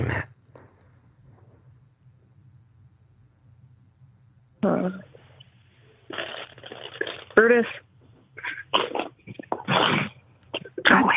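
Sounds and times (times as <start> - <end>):
speech: 4.6 - 5.1, 7.4 - 7.8
dog making short loud vocal bursts: 8.4 - 10.7.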